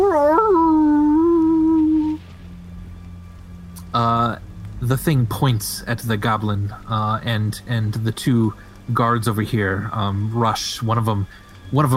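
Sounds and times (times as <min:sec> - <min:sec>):
wolf howling: 0:00.0 - 0:02.2
speech: 0:04.9 - 0:11.9.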